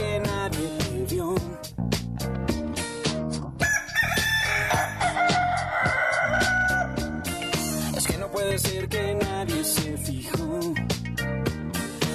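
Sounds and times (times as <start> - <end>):
upbeat rhythmic music with a steady beat: 0.0 - 12.1
rooster crowing: 3.6 - 7.4.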